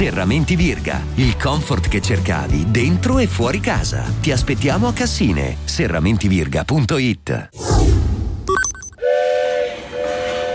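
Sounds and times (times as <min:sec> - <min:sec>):
speech: 0:00.0 - 0:07.9
loud train whistle blast: 0:09.0 - 0:10.5.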